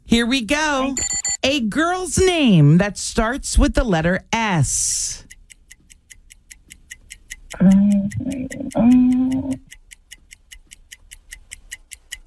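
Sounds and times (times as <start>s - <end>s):
speech: 0.1s - 5.2s, 7.6s - 9.8s
game timer clock ticking: 0.9s - 1.6s, 4.4s - 12.2s
person calling out: 7.6s - 9.7s.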